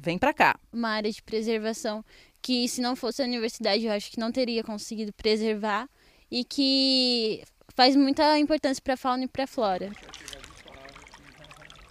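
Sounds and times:
speech: 0.0 - 10.2
small stream trickling and babbling in a Cerrado preservation area in Brazil: 9.6 - 11.8.

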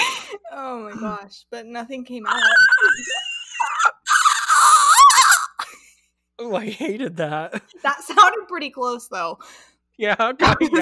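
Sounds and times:
speech: 0.4 - 4.0, 6.4 - 10.8
person imitating a strangled choking scream: 2.3 - 5.6.

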